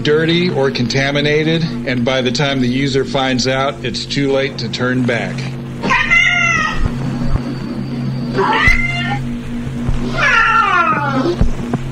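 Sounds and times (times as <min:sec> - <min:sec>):
speech: 0:00.0 - 0:05.6, 0:08.4 - 0:08.8
steady low rumbling hum: 0:00.0 - 0:11.8
cat meowing in long drawn-out wailing cries: 0:05.8 - 0:06.9, 0:08.4 - 0:09.3, 0:10.1 - 0:11.4.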